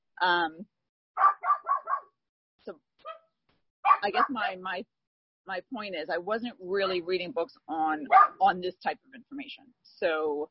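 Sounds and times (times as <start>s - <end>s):
speech: 0.2s - 0.8s, 2.6s - 2.9s, 4.0s - 10.5s
dogs barking: 1.2s - 2.1s, 3.9s - 4.4s, 8.1s - 8.4s.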